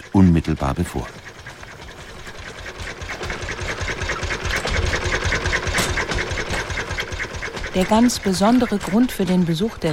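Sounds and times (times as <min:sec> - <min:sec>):
engine of the first motor-driven two-wheeler running: 0:00.0 - 0:09.9
speech: 0:00.2 - 0:01.2, 0:07.8 - 0:09.9.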